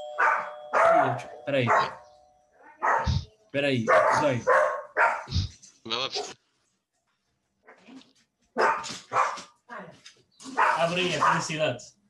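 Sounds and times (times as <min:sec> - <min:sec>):
dogs barking loudly: 0:00.0 - 0:05.5, 0:06.1 - 0:06.4, 0:08.6 - 0:09.6, 0:10.5 - 0:11.6
speech: 0:01.0 - 0:02.0, 0:03.6 - 0:04.6, 0:05.3 - 0:06.4, 0:10.8 - 0:12.0.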